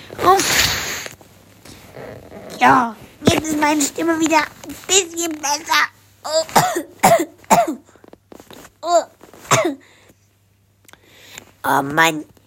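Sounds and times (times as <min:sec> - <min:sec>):
nose blowing into a tissue: 0:00.3 - 0:01.2
speech: 0:02.6 - 0:07.8, 0:11.6 - 0:12.3
person coughing harshly: 0:06.3 - 0:08.0, 0:09.4 - 0:09.9.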